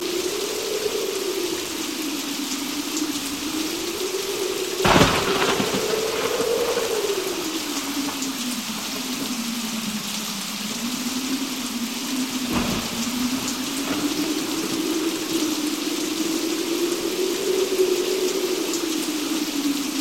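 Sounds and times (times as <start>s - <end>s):
thunderstorm rain: 0.0s - 19.9s
thunder: 4.8s - 9.9s, 10.9s - 16.6s.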